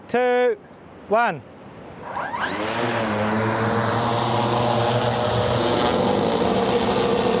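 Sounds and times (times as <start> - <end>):
speech: 0.1 - 3.3
propeller engines of fixed-wing drone with 5 metre wingspan revving for takeoff: 2.0 - 7.3.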